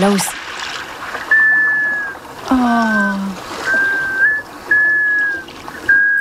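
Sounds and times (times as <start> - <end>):
steady hiss of water and wind: 0.0 - 6.1
black scoters' long drawn-out whistles: 1.3 - 2.2, 3.6 - 6.1.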